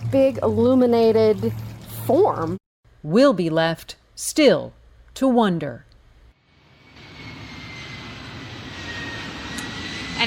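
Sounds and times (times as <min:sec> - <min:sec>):
speech: 0:00.1 - 0:05.9
airplane flying overhead: 0:06.4 - 0:10.2.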